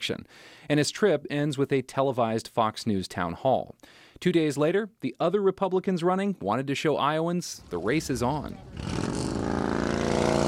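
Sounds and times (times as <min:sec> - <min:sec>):
speech: 0:00.0 - 0:09.2
motorcycle engine revving at a political fundraiser motorcycle ride in Iowa: 0:07.6 - 0:10.4.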